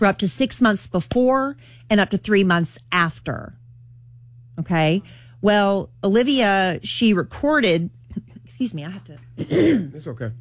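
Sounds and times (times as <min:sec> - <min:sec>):
speech: 0:00.0 - 0:03.6, 0:04.6 - 0:10.3
person clearing throat with something in their throat: 0:09.4 - 0:10.1.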